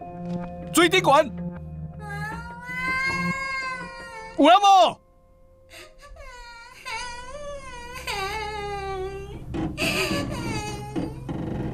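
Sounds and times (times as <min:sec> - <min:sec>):
speech: 0:00.3 - 0:01.4, 0:04.4 - 0:05.0
child crying in long wavering wails: 0:02.0 - 0:04.5, 0:05.8 - 0:11.2.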